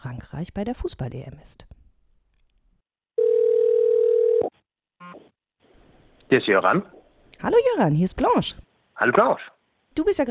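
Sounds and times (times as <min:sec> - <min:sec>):
speech: 0:00.0 - 0:01.7, 0:06.3 - 0:10.2
telephone ringback tone as a call is placed to France: 0:03.2 - 0:04.5.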